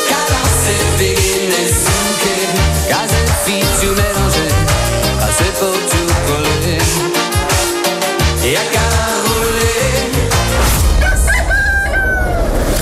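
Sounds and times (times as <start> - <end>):
busy full-sounding musical backing: 0.0 - 11.6
rooster crowing: 10.9 - 12.7.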